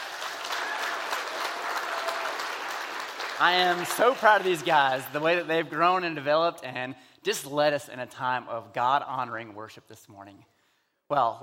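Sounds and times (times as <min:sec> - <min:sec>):
audience applauding youth band in a large room: 0:00.0 - 0:05.5
speech: 0:03.4 - 0:10.5, 0:11.1 - 0:11.4.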